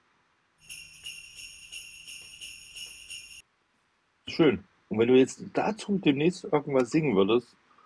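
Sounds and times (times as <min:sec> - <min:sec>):
bunch of keys on a key ring shaken to imitate sleigh bells: 0:00.7 - 0:03.4
speech: 0:04.4 - 0:07.6.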